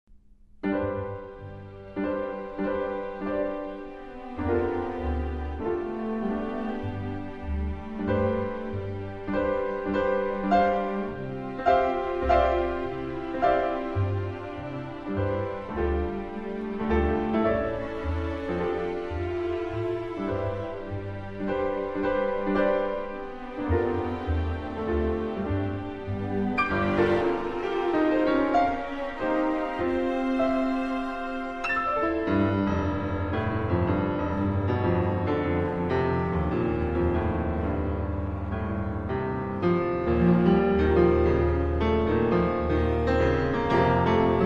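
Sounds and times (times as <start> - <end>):
piano concerto: 0.6 - 44.4.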